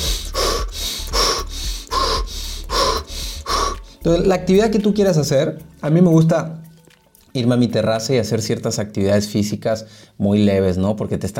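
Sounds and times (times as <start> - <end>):
person demonstrating thoracic chest breathing: 0.0 - 4.1, 9.9 - 10.2
speech: 4.0 - 6.7, 7.4 - 11.3.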